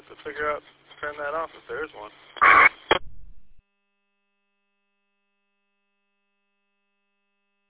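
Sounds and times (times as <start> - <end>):
radio static crackling: 0.0 - 3.6
speech: 0.2 - 3.0
electronic radio roger beep after unkeying: 2.4 - 3.6.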